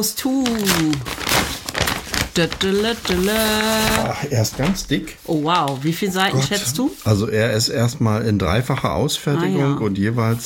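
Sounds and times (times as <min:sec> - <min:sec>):
speech: 0:00.0 - 0:01.5, 0:02.4 - 0:10.4
paper envelope crinkling and rustling as it is opened: 0:00.0 - 0:07.1.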